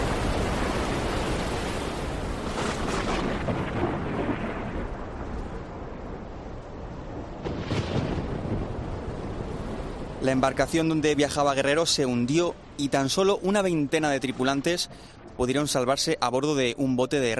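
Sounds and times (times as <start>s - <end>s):
deep rolling thunder: 0.0s - 12.0s
steady roar of rain: 0.0s - 17.3s
wind in a thunderstorm: 0.0s - 17.3s
speech: 10.3s - 17.3s.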